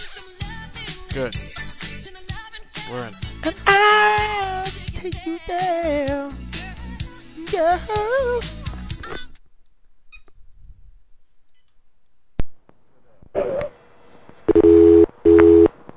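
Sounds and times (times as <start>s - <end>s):
speech: 1.2s - 1.6s, 2.9s - 6.5s, 7.5s - 8.6s
telephone ringback tone on a call to a hotel: 14.5s - 15.7s.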